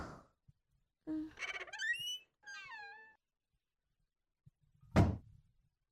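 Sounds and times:
door creaking open: 1.1s - 3.2s
door shutting with a thud: 4.9s - 5.2s.

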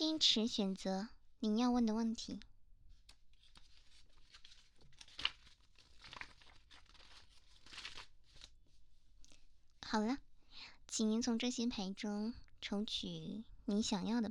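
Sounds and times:
speech: 0.1s - 2.5s, 9.9s - 10.3s, 10.9s - 14.3s
tarot cards being shuffled: 3.0s - 8.6s.

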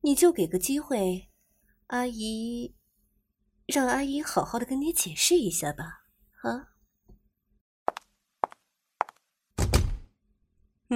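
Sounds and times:
speech: 0.0s - 1.3s, 1.9s - 2.8s, 3.7s - 6.7s
door being shut: 9.6s - 10.1s.

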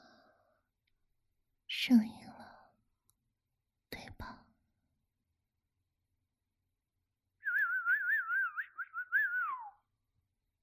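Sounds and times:
speech: 1.8s - 2.2s
person whistling a tune: 7.4s - 9.8s.

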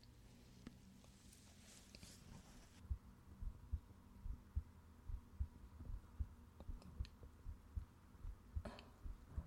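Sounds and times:
soft rustling: 0.2s - 2.9s
heartbeat: 2.8s - 9.4s.

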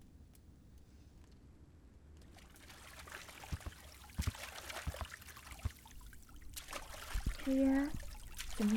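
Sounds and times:
small splashes in a bathtub: 2.2s - 8.7s
water trickling in a bathtub: 2.2s - 8.7s
speech: 7.5s - 8.0s, 8.6s - 8.7s.

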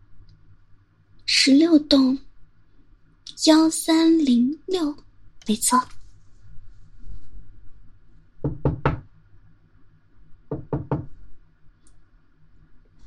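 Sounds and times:
low steady hum: 0.0s - 13.0s
speech: 1.4s - 2.3s, 3.4s - 6.0s
knocking on an apartment door: 8.4s - 9.1s, 10.5s - 11.2s.

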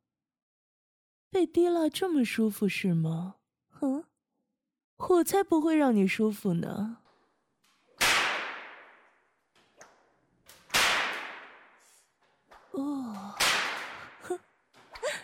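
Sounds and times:
speech: 1.3s - 4.1s, 5.0s - 7.0s
softer snaps: 7.0s - 15.2s
loud whip lashes cracking: 8.0s - 9.2s, 10.5s - 12.1s, 13.2s - 14.2s.

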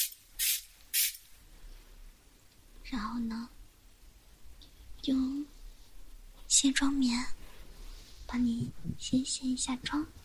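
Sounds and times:
hydrating facial mist spray hissing: 0.0s - 1.2s
speech: 2.9s - 3.6s, 5.0s - 5.5s, 6.5s - 7.4s, 8.3s - 10.2s.

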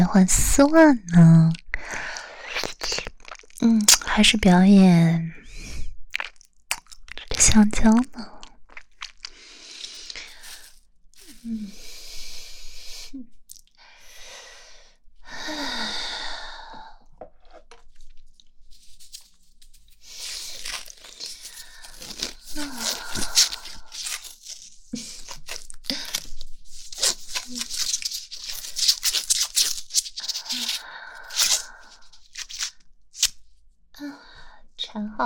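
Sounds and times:
speech: 0.1s - 2.7s, 3.6s - 5.4s, 7.4s - 8.3s, 11.4s - 11.8s
rustling: 9.8s - 11.5s, 17.6s - 33.3s
adhesive tape pulled off a roll and wrapped tightly around something: 19.0s - 33.4s.

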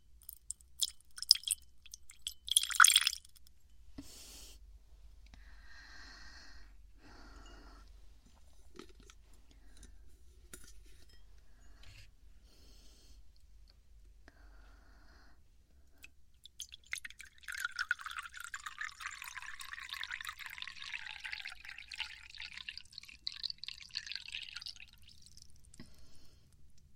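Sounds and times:
plain water pouring into a cup: 0.2s - 3.4s, 16.4s - 25.7s.

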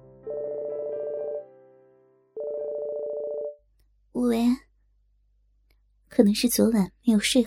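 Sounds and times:
mobile phone ringtone: 0.3s - 1.4s, 2.4s - 3.6s
speech: 6.2s - 7.4s.

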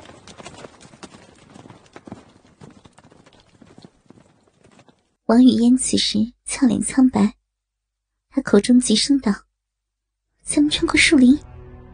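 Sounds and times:
troop of mounted warriors galloping on horseback: 0.0s - 5.2s
speech: 5.3s - 7.4s, 8.4s - 9.4s, 10.5s - 11.5s.

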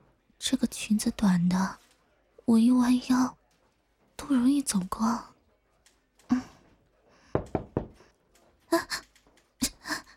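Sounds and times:
speech: 0.4s - 1.8s, 2.5s - 3.4s, 4.2s - 5.3s, 6.3s - 6.5s
knocking on a door: 7.3s - 8.1s.

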